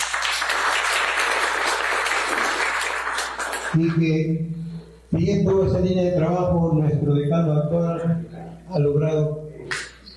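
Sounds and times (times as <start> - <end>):
audience applause at a university faculty event: 0.0 - 3.8
speech: 3.7 - 9.4.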